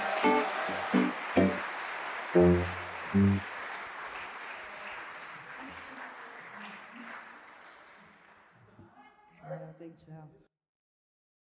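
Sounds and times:
audience whoops and shouts: 0.0 - 1.1
talk show audience applause: 0.0 - 8.7
speech: 2.3 - 3.5.

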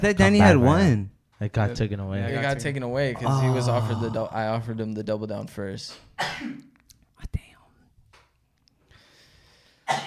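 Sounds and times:
speech: 0.0 - 7.4
quiet breathy whispering: 7.2 - 7.9
sneeze: 9.9 - 10.0.

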